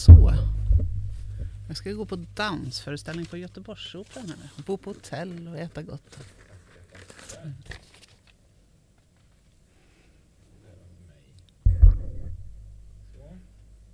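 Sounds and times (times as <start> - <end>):
loud bump: 0.0 - 2.6, 11.6 - 13.1
low rumbling scrape as the mic is moved: 0.0 - 2.6, 11.7 - 13.1
microphone being moved and handled: 0.0 - 3.4, 11.6 - 13.0
soft crinkles: 0.8 - 9.9
speech: 1.7 - 6.4, 7.4 - 7.8.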